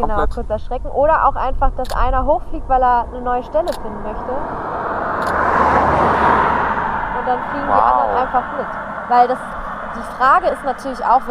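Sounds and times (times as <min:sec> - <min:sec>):
speech: 0:00.0 - 0:05.6, 0:07.3 - 0:11.2
car driving past with broad road rumble: 0:03.0 - 0:11.2.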